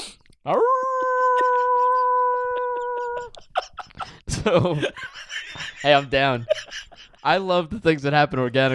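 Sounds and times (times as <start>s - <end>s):
speech: 0.4s - 0.8s, 4.4s - 5.2s, 5.8s - 6.6s, 7.2s - 8.7s
person imitating a drawn-out wolf howl: 0.5s - 3.4s
laughter: 1.0s - 7.4s.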